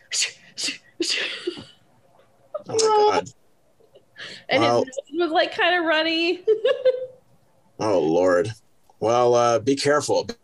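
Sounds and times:
person imitating a cat's breathy hissing sneezes: 0:00.0 - 0:01.4
speech: 0:04.6 - 0:07.1, 0:07.8 - 0:10.4.

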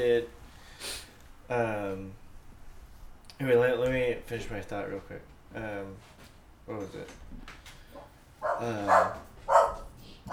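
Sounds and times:
speech: 0:00.0 - 0:00.4, 0:01.5 - 0:02.2, 0:03.4 - 0:07.6, 0:08.4 - 0:09.3
dog barking: 0:08.4 - 0:10.3.

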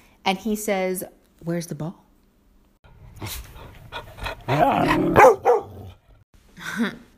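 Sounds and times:
speech: 0:00.2 - 0:02.0, 0:03.2 - 0:03.5, 0:04.5 - 0:05.3, 0:06.8 - 0:07.0
dog barking: 0:05.1 - 0:06.0.

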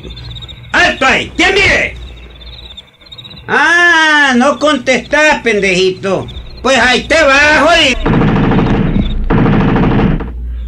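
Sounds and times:
speech: 0:00.9 - 0:02.0, 0:03.5 - 0:08.0
machine gun fire from a guard shooting at a visitor: 0:07.7 - 0:10.4.

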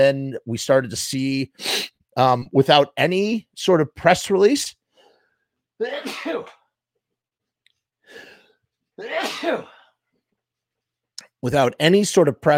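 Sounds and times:
speech: 0:00.0 - 0:04.8, 0:05.8 - 0:06.6, 0:09.0 - 0:09.8, 0:11.4 - 0:12.5
short sharp breath or sniff: 0:01.6 - 0:01.9, 0:08.0 - 0:08.6
loud explosive sneezes: 0:05.8 - 0:06.6, 0:09.0 - 0:09.9.

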